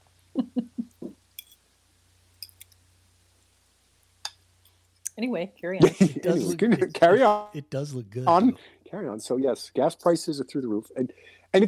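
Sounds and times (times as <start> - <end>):
laughter: 0.4 - 1.1, 5.8 - 7.8
fork clinking against a plate while eating: 1.4 - 1.6
speech: 5.2 - 11.6.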